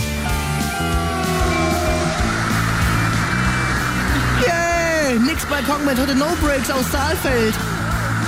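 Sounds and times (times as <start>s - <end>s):
band rehearsing: 0.0s - 8.2s
constant rumble of a busy train station: 0.0s - 8.2s
metallic squeal of a train: 0.6s - 4.4s
speech: 5.5s - 7.8s.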